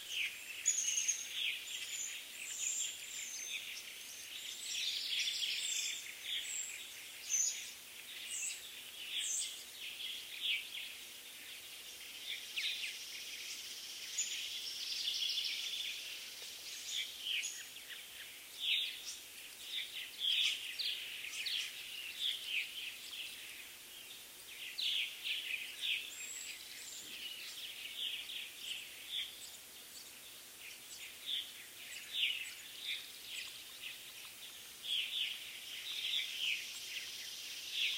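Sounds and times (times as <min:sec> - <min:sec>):
constant high insect-like hiss: 0:00.0 - 0:37.9
summer dawn chorus of chirping birds: 0:00.0 - 0:37.9.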